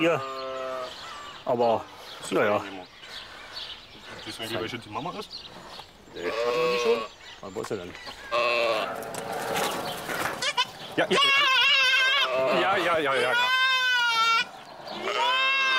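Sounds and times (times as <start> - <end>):
speech: 0.0 - 0.3, 1.4 - 2.9, 4.2 - 9.7, 11.0 - 11.4, 12.4 - 13.6
young goat kid bleating for its mother: 6.2 - 7.1, 10.4 - 15.7.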